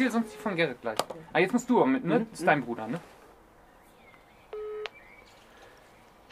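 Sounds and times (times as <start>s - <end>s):
speech: 0.0s - 3.2s
electronic telephone dialing tone: 4.6s - 4.9s.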